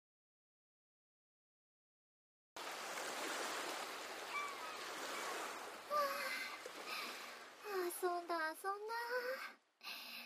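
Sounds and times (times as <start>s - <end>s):
ocean waves washing on the shore: 2.6s - 9.1s
faint brief high calls: 4.0s - 6.0s
speech: 8.0s - 9.6s.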